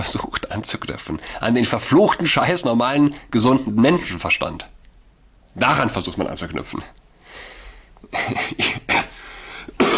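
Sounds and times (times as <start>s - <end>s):
speech: 0.0s - 4.7s, 5.6s - 7.5s, 8.1s - 8.9s
harsh breathy coughs: 8.2s - 9.9s.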